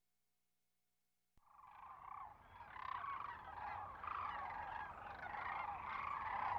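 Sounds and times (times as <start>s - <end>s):
sandhill cranes giving rattling bugling chorus in Western North America: 1.9s - 6.5s.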